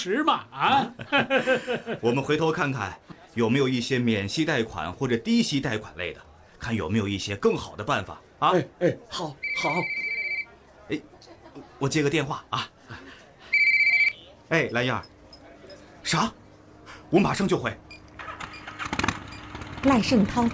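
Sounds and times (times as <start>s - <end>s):
people talking: 0.0s - 1.1s, 1.9s - 17.8s, 19.8s - 20.5s
laughter: 0.6s - 2.2s, 10.9s - 13.6s
telephone ringing with electronic tone: 9.4s - 10.5s, 13.5s - 15.0s.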